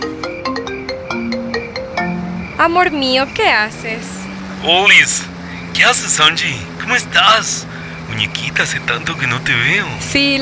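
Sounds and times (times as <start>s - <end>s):
mobile phone ringing with an electronic ringtone: 0.0s - 2.4s
speech: 2.6s - 10.4s.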